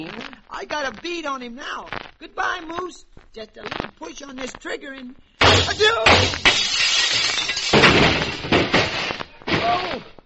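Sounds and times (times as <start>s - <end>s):
speech: 0.0s - 6.8s, 9.6s - 10.2s
plate glass window shattering: 5.4s - 9.8s
tinkling shards of glass scattering: 5.7s - 8.4s.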